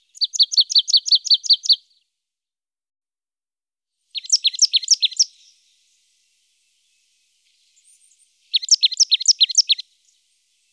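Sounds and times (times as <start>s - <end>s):
Marsh tit calls: 0.1s - 1.8s, 4.2s - 5.5s, 8.5s - 9.8s.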